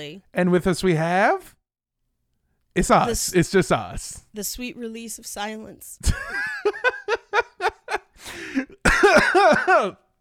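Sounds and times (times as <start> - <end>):
speech: 0.0 - 1.6, 2.8 - 7.0, 8.2 - 10.0
person laughing in rhythmic bursts: 6.0 - 9.9
harsh cough: 8.2 - 10.1.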